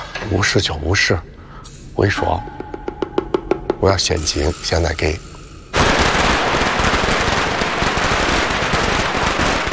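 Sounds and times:
speech: 0:00.2 - 0:01.3, 0:02.0 - 0:02.7, 0:03.8 - 0:05.3
string of firecrackers set off for a birthday celebration: 0:05.7 - 0:09.7.

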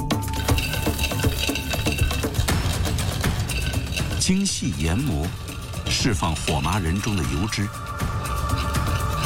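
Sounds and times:
seeds being stir-fried in an iron wok: 0:00.2 - 0:09.2
speech: 0:04.3 - 0:05.4, 0:06.0 - 0:07.9.

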